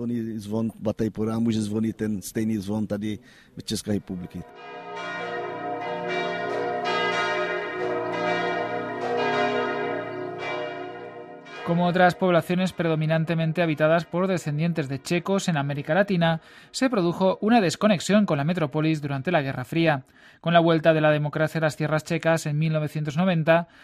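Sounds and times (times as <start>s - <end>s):
speech: 0.0s - 5.2s, 11.7s - 23.8s
church bell ringing: 4.4s - 16.0s.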